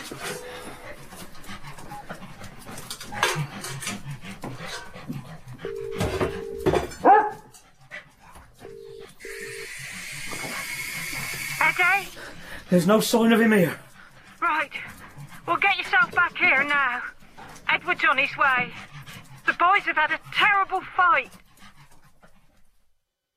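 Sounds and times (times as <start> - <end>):
dogs panting while being fed: 0.0 - 23.0
dog barking: 7.0 - 7.5
speech: 12.7 - 13.8, 19.8 - 21.4.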